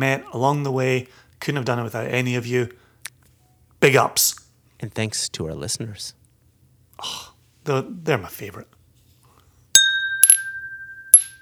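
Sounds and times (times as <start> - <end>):
speech: 0.0 - 2.8, 3.8 - 6.2, 7.0 - 8.8
glasses clinking: 9.8 - 11.4.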